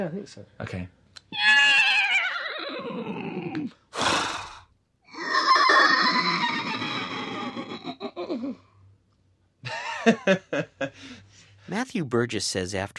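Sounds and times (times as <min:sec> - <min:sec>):
speech: 0:00.0 - 0:01.5, 0:02.8 - 0:03.8, 0:10.0 - 0:12.9
two people vocally imitating a horse whinny: 0:01.3 - 0:08.6
person imitating a horse snort: 0:03.9 - 0:04.7
laughter: 0:09.6 - 0:11.2.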